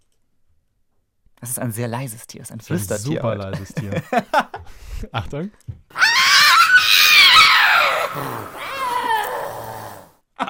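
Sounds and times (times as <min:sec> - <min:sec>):
speech: 0:01.4 - 0:06.0, 0:08.2 - 0:08.6
laughter: 0:02.8 - 0:05.3
Tasmanian devil screeching: 0:06.0 - 0:10.2.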